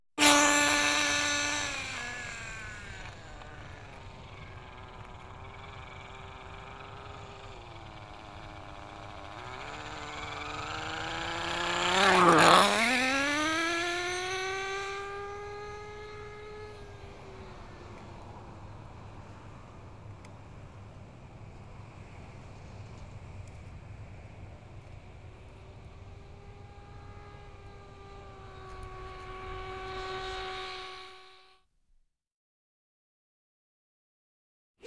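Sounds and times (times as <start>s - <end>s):
remote control toy car: 0.2s - 20.4s, 22.0s - 31.6s.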